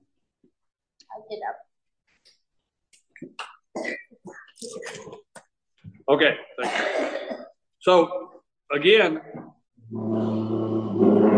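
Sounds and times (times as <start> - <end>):
speech: 1.2 - 1.7, 3.2 - 5.2, 6.1 - 10.3
person coughing: 3.8 - 5.2, 6.6 - 7.6
throat clearing: 6.6 - 7.6.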